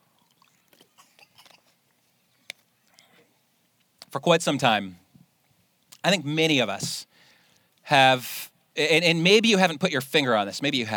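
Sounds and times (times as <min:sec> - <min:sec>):
person sipping water: 0:00.0 - 0:03.3
speech: 0:04.1 - 0:05.0, 0:06.0 - 0:07.1, 0:07.9 - 0:10.9.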